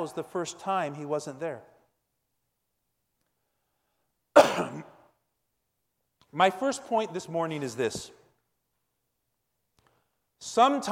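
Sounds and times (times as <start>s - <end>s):
speech: 0.0s - 1.7s, 6.3s - 8.2s, 10.4s - 10.9s
cough with rough throat-clearing rasp: 4.4s - 5.1s.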